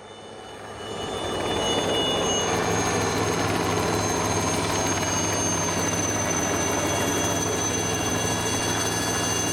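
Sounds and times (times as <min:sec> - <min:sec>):
fleet of helicopters taking off in fine weather in Hong Kong: 0:00.1 - 0:09.5.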